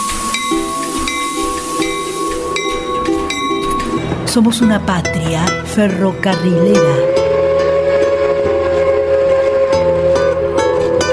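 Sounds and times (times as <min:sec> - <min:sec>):
sustained train steam whistle: 0:00.0 - 0:04.2, 0:07.0 - 0:11.1
rhythmic clatter of train wheels: 0:00.0 - 0:06.3
speech: 0:04.4 - 0:07.2.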